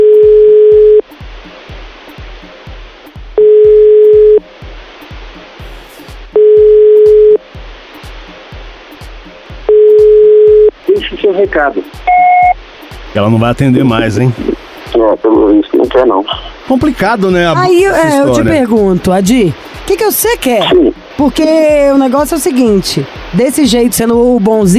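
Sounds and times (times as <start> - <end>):
telephone ringback tone during a repeated call: 0.0 - 1.0, 3.4 - 4.4, 6.4 - 7.4, 9.7 - 10.7, 12.1 - 12.6
speech: 11.4 - 12.1, 13.2 - 24.7.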